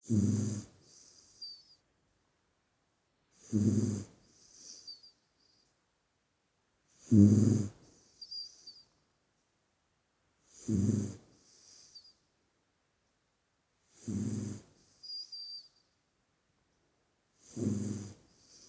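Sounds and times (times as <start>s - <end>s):
dog snoring with rough rumbling breaths: 0.0s - 1.6s, 3.3s - 5.0s, 6.9s - 8.8s, 10.4s - 12.1s, 13.9s - 15.7s, 17.4s - 18.6s
speech: 3.5s - 4.1s.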